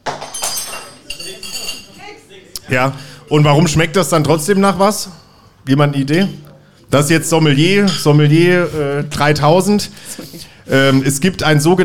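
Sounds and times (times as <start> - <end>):
glass bottle clinking as it is handled and raised to the nose: 0.0 - 2.0
speech: 2.7 - 11.8.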